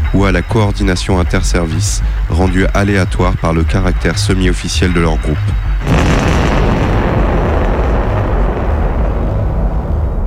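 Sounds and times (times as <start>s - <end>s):
speech: 0.1s - 6.2s
loud explosion with roaring rumble: 5.8s - 10.2s.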